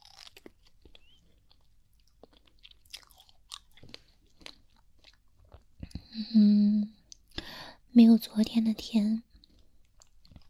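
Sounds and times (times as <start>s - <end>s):
strawberries being eaten: 0.0s - 6.2s, 9.3s - 10.4s
speech: 6.2s - 6.8s, 8.0s - 9.3s.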